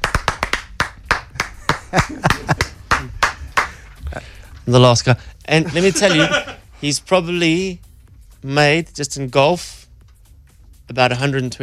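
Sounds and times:
small group clapping hands in applause: 0.0s - 3.9s
laughter: 1.4s - 4.3s, 5.5s - 6.6s
speech: 1.9s - 2.6s, 4.2s - 7.8s, 8.4s - 9.8s, 10.9s - 11.6s.

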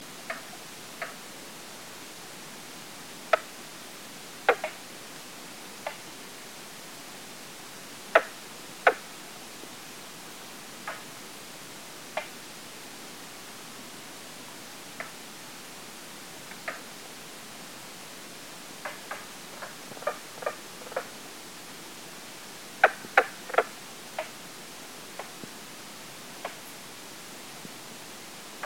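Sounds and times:
light misty rain hiss at South Branch Pond: 0.0s - 28.6s
Mink Frog Lithobates septentrionalis calling with hollow knocking taps: 4.5s - 4.8s, 8.1s - 9.0s, 10.8s - 11.1s, 18.8s - 21.2s, 22.8s - 24.4s, 26.4s - 26.6s.

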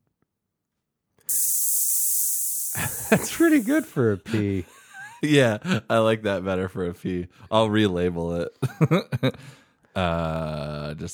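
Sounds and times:
snake hissing: 1.3s - 3.9s
speech: 3.1s - 11.1s.

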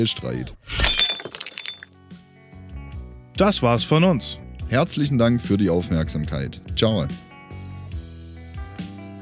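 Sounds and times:
speech: 0.0s - 0.9s, 3.4s - 7.2s
glass pieces tinkling and clinking as they settle: 0.7s - 1.9s
layered glass shattering sound effect: 0.7s - 1.9s.

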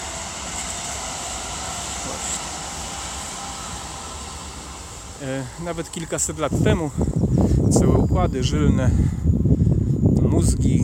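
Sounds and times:
heavy rumble of a passing train: 0.0s - 8.5s
speech: 5.2s - 9.6s, 10.3s - 10.8s.

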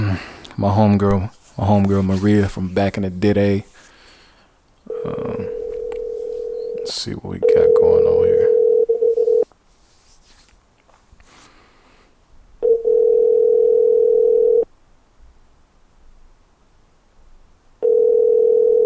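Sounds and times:
speech: 0.2s - 3.7s, 5.0s - 5.4s, 6.9s - 8.0s
outgoing phone call ringback tone to a call-in line: 4.9s - 9.5s, 12.6s - 14.7s, 17.8s - 18.8s.

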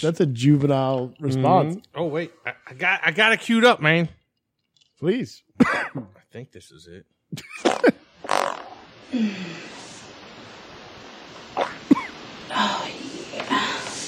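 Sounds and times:
speech: 0.0s - 4.2s, 5.0s - 8.0s, 9.1s - 9.8s, 11.6s - 11.8s
low noisy background: 0.0s - 14.0s
short sputtering fart sounds played back from a video: 7.4s - 9.0s, 11.5s - 11.9s.

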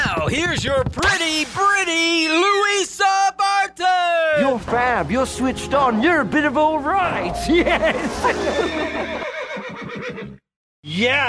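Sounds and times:
speech: 0.3s - 3.2s, 3.8s - 9.3s, 10.8s - 11.2s
laughter: 7.4s - 9.6s
horse whinnying: 8.5s - 10.4s.

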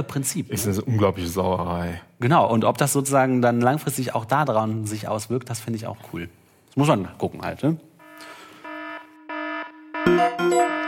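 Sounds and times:
speech: 0.0s - 8.3s
electronic alarm in harmonic beeping bursts: 8.0s - 10.8s.

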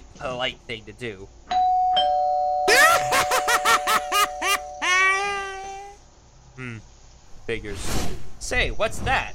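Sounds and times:
speech: 0.2s - 1.5s, 6.6s - 9.3s
novelty doorbell with laugh-like notes: 1.5s - 5.0s
steady electronic hum: 2.4s - 7.3s.

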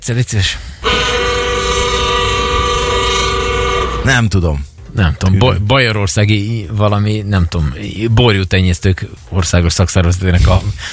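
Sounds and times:
speech: 0.0s - 1.2s, 4.0s - 10.9s
signal horn blast beside a racetrack finish straight: 0.8s - 4.2s.

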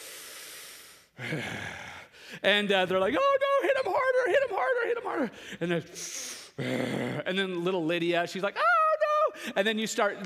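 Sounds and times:
person acting out labored panting while lying on the ground: 0.0s - 2.4s, 5.3s - 7.2s
speech: 1.2s - 8.7s, 9.5s - 10.2s.

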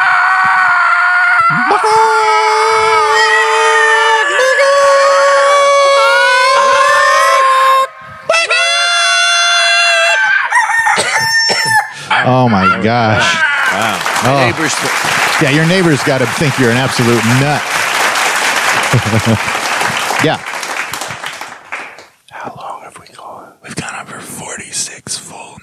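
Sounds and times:
several people imitating chickens squawking and crowing: 0.0s - 14.8s
speech: 1.8s - 2.2s, 12.3s - 17.8s, 18.9s - 19.6s, 20.2s - 20.5s
laughter: 11.0s - 20.4s.

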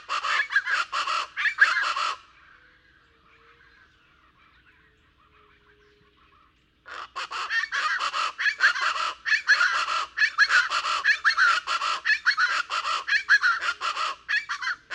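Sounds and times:
Plain Chachalaca pair duetting raucously in the lower Rio Grande Valley, Texas: 0.0s - 2.3s, 6.8s - 14.9s.

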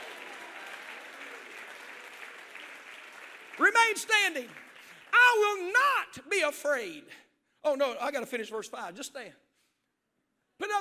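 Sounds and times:
large group clapping hands: 0.0s - 5.8s
speech: 3.8s - 4.6s, 5.4s - 9.4s, 10.6s - 10.7s.

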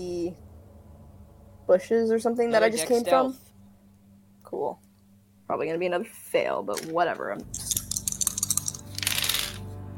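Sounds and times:
speech: 1.7s - 3.5s, 4.5s - 4.8s, 5.5s - 7.8s
dice clattering: 7.6s - 9.6s.

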